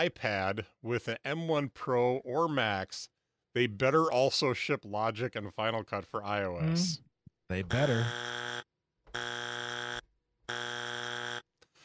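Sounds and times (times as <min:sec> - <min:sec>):
speech: 0:00.0 - 0:09.3
game-show buzzer: 0:07.7 - 0:11.5.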